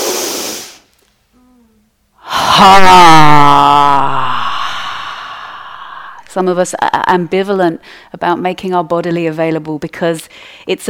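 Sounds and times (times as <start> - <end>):
forceful exhale voiced as a falling ha during a breathing exercise: 0.0 - 0.9, 3.8 - 6.4
short breathy rush: 2.2 - 8.1
speech: 2.6 - 3.7, 6.4 - 10.8.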